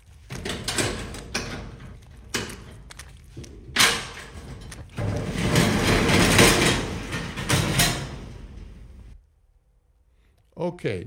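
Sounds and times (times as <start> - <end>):
storage unit door rattling as it slides open: 0.2 - 9.2.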